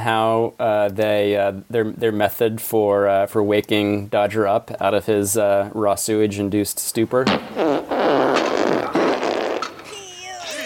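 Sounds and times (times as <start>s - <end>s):
speech: 0.0s - 8.4s
long sputtering fart with squeaky whistling tones: 7.4s - 9.9s.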